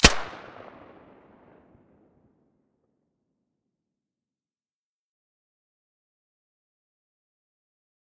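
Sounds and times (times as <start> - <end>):
FN F2000 rifle shot with silencer: 0.0 - 1.9.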